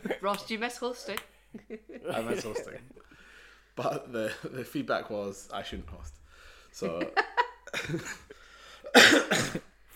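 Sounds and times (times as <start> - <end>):
speech: 0.2 - 3.0, 3.8 - 8.3, 8.9 - 9.9
laughter: 1.6 - 3.0, 6.8 - 8.3
person coughing in short harsh bursts: 8.8 - 9.8.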